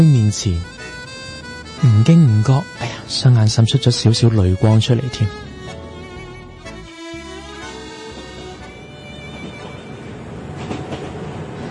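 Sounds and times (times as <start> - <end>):
speech: 0.0 - 1.0, 1.8 - 5.5
train running on rails toward Vienna: 7.4 - 11.6.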